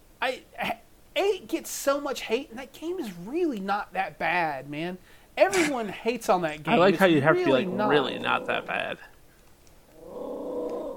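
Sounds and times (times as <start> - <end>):
speech: 1.4 - 9.1
dog growling: 7.4 - 8.8.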